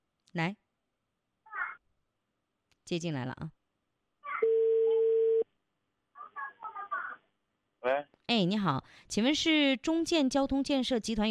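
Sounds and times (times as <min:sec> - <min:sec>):
speech: 0:00.3 - 0:00.6, 0:02.9 - 0:03.6, 0:07.8 - 0:11.2
telephone ringback tone over a phone line: 0:04.4 - 0:05.4.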